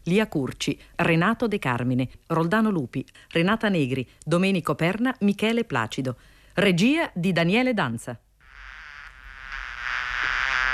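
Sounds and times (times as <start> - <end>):
speech: 0.1 - 8.2
worker bees buzzing: 8.4 - 10.7.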